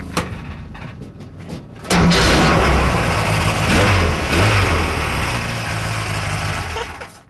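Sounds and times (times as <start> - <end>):
old motocross car engine starting and revving: 1.8 - 7.2.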